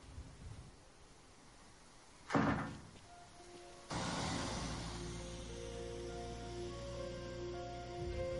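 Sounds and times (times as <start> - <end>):
door shut with a single firm thud: 2.3 - 3.0
steady low rumble: 3.9 - 8.3.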